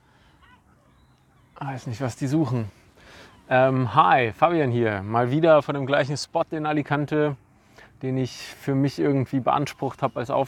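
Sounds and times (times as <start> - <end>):
outdoor noise in Alicante: 0.0 - 10.4
seagulls calling in Alicante: 0.1 - 3.9, 9.0 - 10.4
speech: 1.6 - 10.4.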